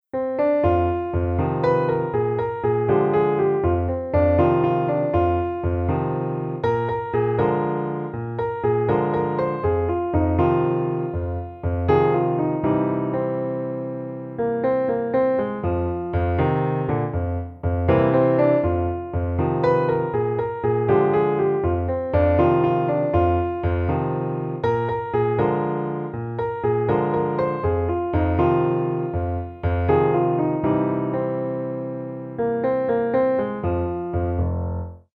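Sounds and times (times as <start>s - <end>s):
solo rockin' blues piano: 0.0s - 35.1s.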